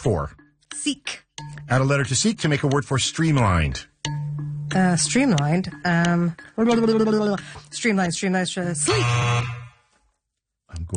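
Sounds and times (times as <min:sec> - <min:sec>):
speech: 0:00.0 - 0:09.6, 0:10.7 - 0:10.9
game show buzzer on a word quiz: 0:08.8 - 0:09.9.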